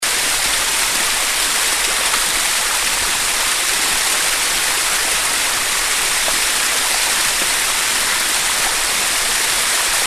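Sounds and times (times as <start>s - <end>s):
waterfall: 0.0s - 10.0s.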